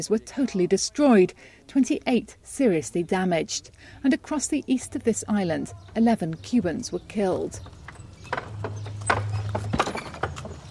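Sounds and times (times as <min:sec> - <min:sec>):
speech: 0:00.0 - 0:07.8
horse hooves clip-clopping on a hard street: 0:07.1 - 0:10.7.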